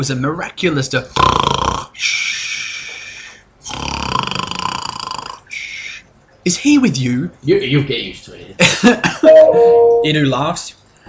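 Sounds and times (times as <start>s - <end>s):
speech: 0.0s - 2.1s, 6.4s - 10.8s
voice imitating the snoring of a dwarf asleep in a chair: 1.1s - 2.1s, 3.6s - 5.5s.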